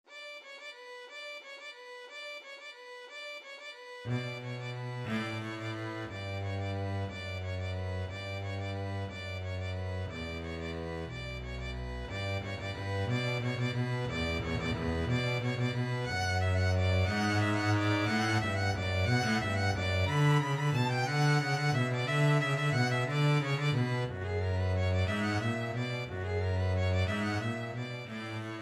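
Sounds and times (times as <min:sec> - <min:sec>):
violin in a duet: 0:00.1 - 0:28.6
double bass in a duet: 0:04.1 - 0:28.6.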